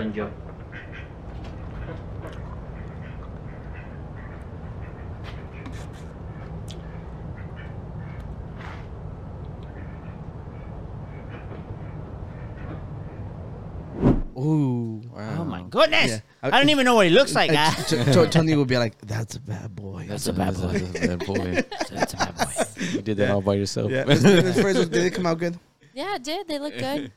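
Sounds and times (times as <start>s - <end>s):
speech: 0.1s - 1.0s, 14.4s - 27.1s
duck quacking in short nasal bursts: 0.6s - 8.2s
steady loud low rumble: 3.6s - 14.6s
laughter: 17.4s - 18.6s, 20.2s - 25.4s.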